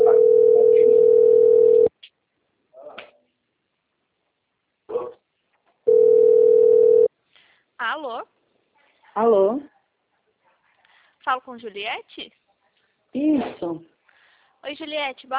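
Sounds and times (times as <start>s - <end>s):
steady telephone tone before a phone call: 0.0s - 1.9s, 5.9s - 7.1s
speech: 9.2s - 9.7s, 11.2s - 12.4s, 13.1s - 13.9s, 14.6s - 15.3s.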